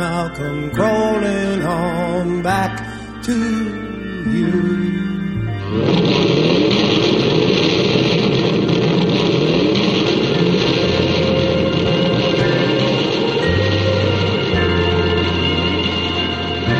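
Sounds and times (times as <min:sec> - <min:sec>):
speech: 0:00.2 - 0:05.0
motorcycle engine revving: 0:05.6 - 0:16.7.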